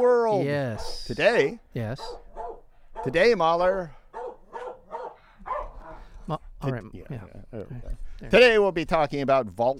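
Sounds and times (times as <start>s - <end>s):
speech: 0.0s - 2.2s, 3.0s - 4.0s, 6.3s - 9.7s
dog barking in sharp yips: 0.7s - 1.2s, 2.0s - 3.4s, 4.1s - 6.1s.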